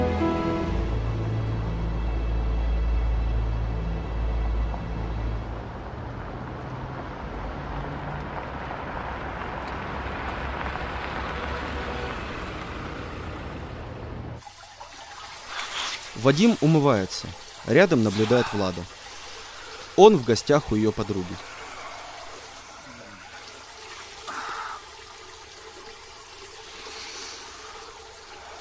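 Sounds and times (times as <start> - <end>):
car engine and road noise: 0.0 - 14.4
speech: 16.2 - 19.0, 20.0 - 21.5.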